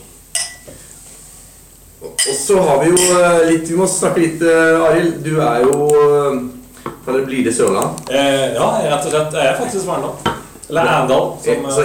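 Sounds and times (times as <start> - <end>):
glasses clinking in a toast: 0.4 - 0.7, 2.2 - 3.3
speech: 2.2 - 11.8.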